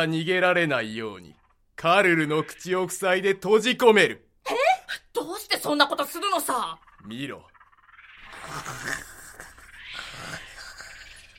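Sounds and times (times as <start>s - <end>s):
speech: 0.0s - 7.5s
person snoring while asleep: 8.3s - 11.3s.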